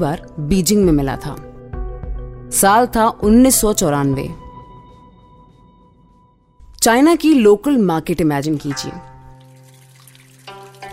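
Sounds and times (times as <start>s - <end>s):
speech: 0.0s - 1.5s, 2.5s - 4.4s, 6.8s - 9.1s
water running down a drain: 8.8s - 10.9s.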